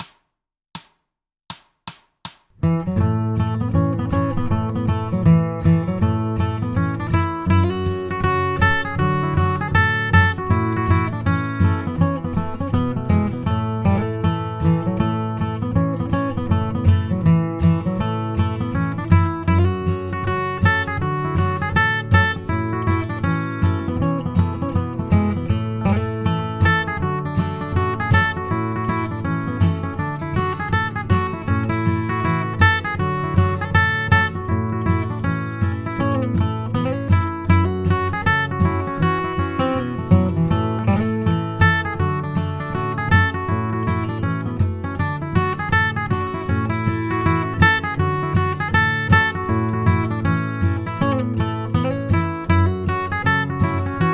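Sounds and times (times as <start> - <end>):
guitar playing a shuffle tune: 2.6 - 54.1.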